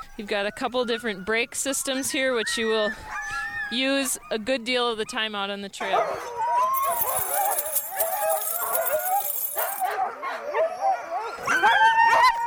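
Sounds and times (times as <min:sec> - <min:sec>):
speech: 0:00.2 - 0:06.4
pack of sled dogs barking, yipping and howling while hooked up to a sled: 0:06.0 - 0:12.4.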